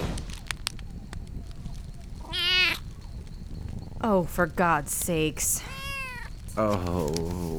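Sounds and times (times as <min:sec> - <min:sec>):
faint clicks: 0:00.1 - 0:07.5
kitten mewing: 0:02.2 - 0:03.0, 0:05.6 - 0:07.5
speech: 0:04.0 - 0:05.7, 0:06.6 - 0:07.5.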